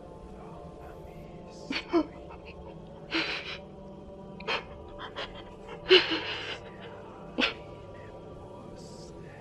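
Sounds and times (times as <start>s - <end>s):
low steady hum: 0.0s - 9.3s
person crying over a telephone line: 1.7s - 3.7s, 4.4s - 7.8s.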